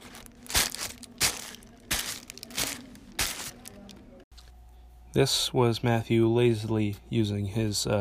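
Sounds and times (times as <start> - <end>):
wrapping paper crinkled in crunchy bursts: 0.0 - 4.0
speech: 5.2 - 7.9.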